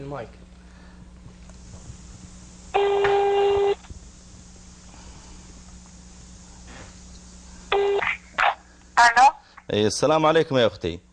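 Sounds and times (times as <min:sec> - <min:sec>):
speech: 0:00.0 - 0:00.4, 0:09.7 - 0:11.1
faint phone line hum: 0:00.0 - 0:11.1
telephone ringback tone through a phone line calling a landline: 0:02.7 - 0:03.8, 0:07.7 - 0:08.0.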